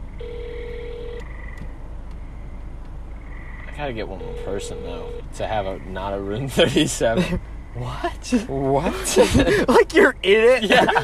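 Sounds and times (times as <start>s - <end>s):
low hiss and rumble: 0.0s - 11.0s
electronic ringback tone on a phone line: 0.2s - 1.3s, 4.2s - 5.2s
speech: 3.8s - 11.0s
laughter: 6.4s - 7.4s, 8.3s - 11.0s.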